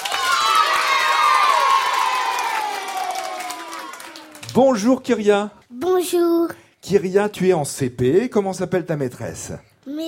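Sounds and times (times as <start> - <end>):
clapping: 0.0 - 4.7
crowd cheering and whooping: 0.0 - 4.7
speech: 4.6 - 10.0.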